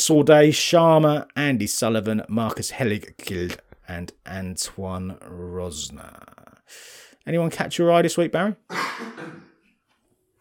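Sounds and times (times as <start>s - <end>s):
speech: 0.0s - 9.5s
cough: 8.7s - 9.6s.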